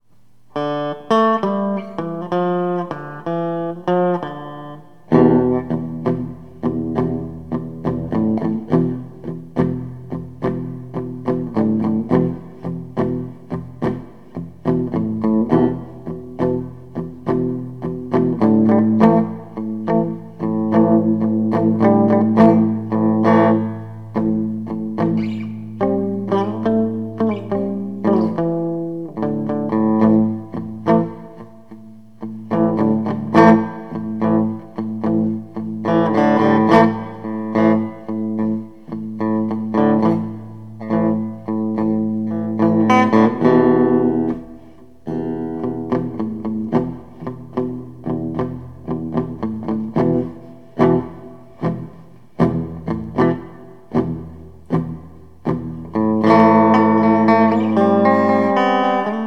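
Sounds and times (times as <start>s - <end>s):
Telecaster guitar through amplifier: 0.0s - 59.2s.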